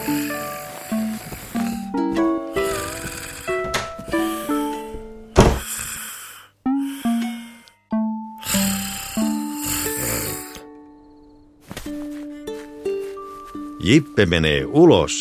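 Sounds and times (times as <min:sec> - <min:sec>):
cartoonish mouse snoring: 0:00.0 - 0:10.7
speech: 0:13.9 - 0:15.2.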